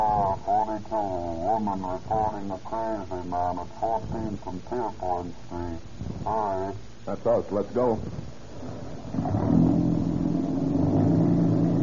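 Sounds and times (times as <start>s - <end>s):
speech: 0.8s - 8.2s
old car engine revving and accelerating: 8.6s - 11.8s.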